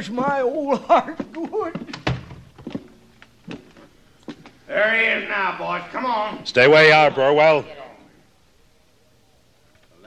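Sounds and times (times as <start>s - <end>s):
speech: 0.0s - 2.0s, 4.7s - 7.8s
front door opening and shutting with dull wooden thuds: 1.9s - 2.9s.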